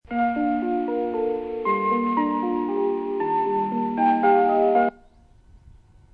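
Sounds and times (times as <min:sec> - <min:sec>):
melody: 0:00.1 - 0:05.0.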